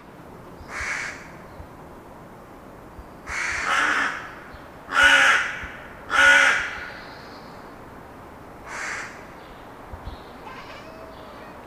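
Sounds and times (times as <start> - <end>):
Corvus corone carrion crow cawing harshly: 0.7 - 1.3, 3.3 - 6.9, 8.7 - 9.2.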